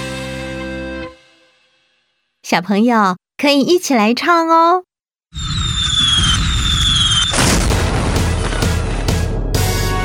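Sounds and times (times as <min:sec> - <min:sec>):
speech: 0:02.5 - 0:05.4
fireworks whistling upward: 0:05.3 - 0:09.2
fireworks bursting in booms and crackles: 0:05.4 - 0:09.9.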